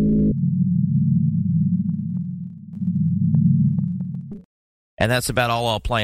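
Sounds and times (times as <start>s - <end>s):
mysterious low hum: 0.0s - 4.5s
speech: 5.0s - 6.0s.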